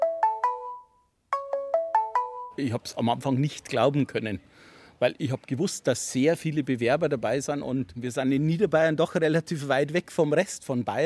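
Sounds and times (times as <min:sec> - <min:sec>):
telephone ringing with a melodic electronic ringtone for an incoming call: 0:00.0 - 0:02.6
speech: 0:02.6 - 0:11.0.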